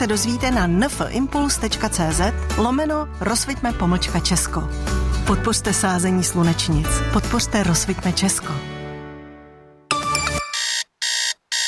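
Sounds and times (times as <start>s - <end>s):
speech: 0.0s - 8.7s
alarm clock ringing: 10.1s - 11.6s.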